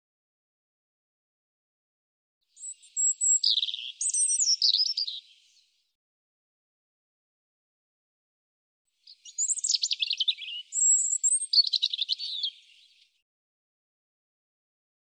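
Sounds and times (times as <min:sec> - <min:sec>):
European robin singing: 0:02.5 - 0:05.8, 0:09.0 - 0:13.2.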